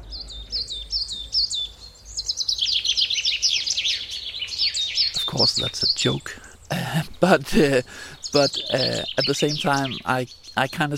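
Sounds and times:
birds singing: 0.0 - 10.9
speech: 5.4 - 10.9.

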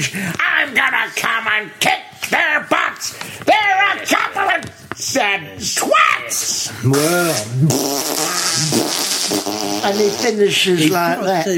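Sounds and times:
speech: 0.0 - 11.5
person making a buzzy raspberry imitating a fart: 6.8 - 11.5.

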